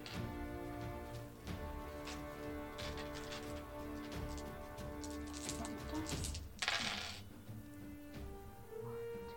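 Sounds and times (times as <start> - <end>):
music: 0.0 - 9.3
dice rattling and clattering across a surface: 2.8 - 7.3.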